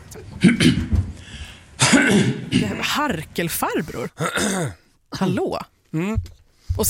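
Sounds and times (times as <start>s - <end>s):
speech: 0.1s - 1.0s, 3.0s - 6.8s
person clearing throat: 0.4s - 1.0s, 1.8s - 2.9s, 4.2s - 4.8s
person coughing: 0.4s - 1.0s, 1.8s - 2.8s, 4.2s - 4.8s.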